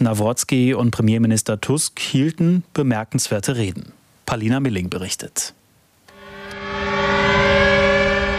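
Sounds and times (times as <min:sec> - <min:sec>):
speech: 0:00.0 - 0:05.6
air-raid siren wailing outdoors over the Westerplatte in Gdańsk Poland at memorial: 0:06.1 - 0:08.3.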